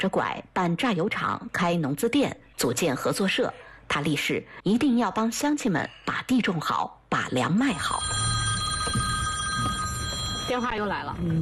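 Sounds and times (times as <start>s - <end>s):
speech: 0.0s - 9.0s, 10.5s - 11.4s
mobile phone ringing with electronic tone: 7.8s - 11.1s.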